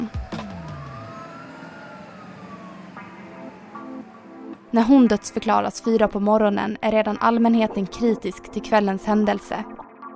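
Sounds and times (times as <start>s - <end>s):
ambulance siren wailing in stepped two-tone blasts: 0.0s - 5.8s
steady traffic rumble: 0.0s - 6.7s
speech: 4.7s - 9.8s.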